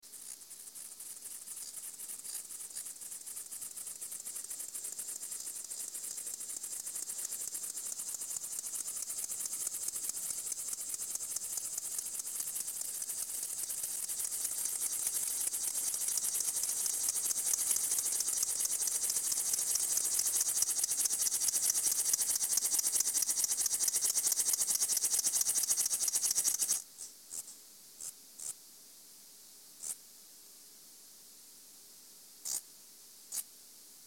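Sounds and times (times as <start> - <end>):
Chorthippus apricarius stridulating in a lab: 0.0 - 28.6, 32.4 - 32.6.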